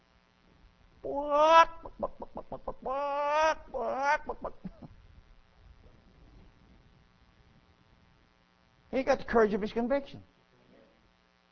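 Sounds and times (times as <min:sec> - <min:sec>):
speech: 0:01.0 - 0:04.7, 0:08.9 - 0:10.3
chicken clucking and squawking: 0:01.4 - 0:04.9.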